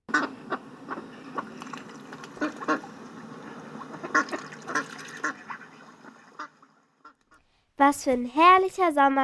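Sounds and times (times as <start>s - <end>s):
duck quacking in short nasal bursts: 0.1s - 1.6s, 2.3s - 7.2s
faint ambient hiss: 0.1s - 9.0s
speech: 7.8s - 9.2s.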